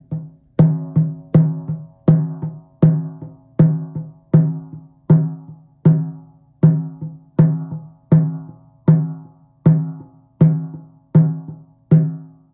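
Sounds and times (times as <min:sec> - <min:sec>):
goat hide shaman drum with hair: 0:00.0 - 0:12.4.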